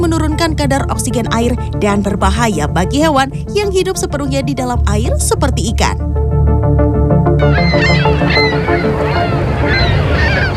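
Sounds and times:
speech: 0:00.2 - 0:06.2, 0:07.4 - 0:09.8
geese honking on a pond: 0:07.4 - 0:10.5.

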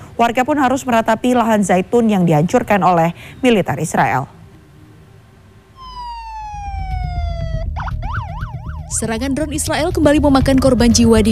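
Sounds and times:
speech: 0:00.2 - 0:04.4, 0:09.0 - 0:11.3
ambulance siren arriving at a blast site near a hospital in Gaza City: 0:05.8 - 0:09.4
low rumbling noise: 0:05.8 - 0:11.3.

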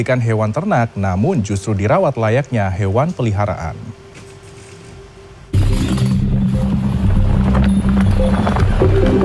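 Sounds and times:
speech: 0:00.0 - 0:04.0
runaway horse galloping with hooves clip-clopping: 0:06.3 - 0:09.2.

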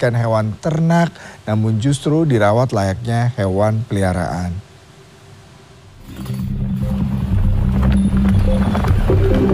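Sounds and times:
speech: 0:00.0 - 0:04.7
runaway horse hooves clattering on hard ground in Bantul Yogyakarta: 0:06.5 - 0:09.5.

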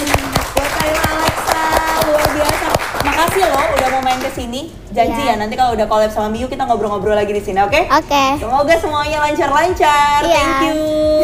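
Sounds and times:
audience clapping in rhythm: 0:00.0 - 0:04.5
speech: 0:04.1 - 0:11.2.

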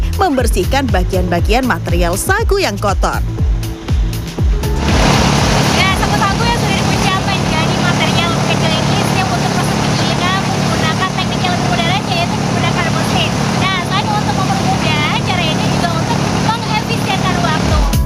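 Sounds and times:
speech: 0:00.2 - 0:03.5
sago trunk grinding machine running: 0:04.7 - 0:17.9.

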